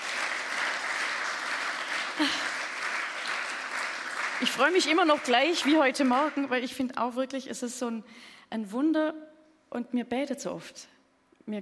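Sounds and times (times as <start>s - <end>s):
audience applause at a Christian church gathering: 0.0s - 6.6s
speech: 2.2s - 2.4s, 4.4s - 11.6s.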